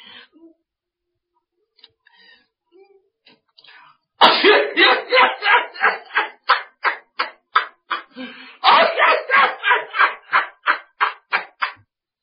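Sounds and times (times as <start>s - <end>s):
storyteller's voice imitating people coughing from smoke: 4.2s - 6.5s, 8.6s - 11.4s
laughter: 4.4s - 11.8s.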